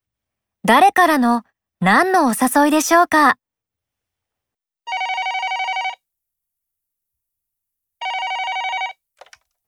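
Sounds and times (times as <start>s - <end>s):
speech: 0.6s - 3.4s
telephone ringing with a trilling bell tone: 4.9s - 6.0s, 8.0s - 9.0s.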